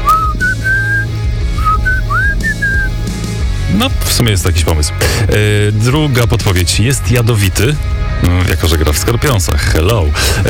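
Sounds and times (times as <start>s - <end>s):
person whistling a slow gliding melody: 0.0s - 3.0s
speech: 3.8s - 10.4s.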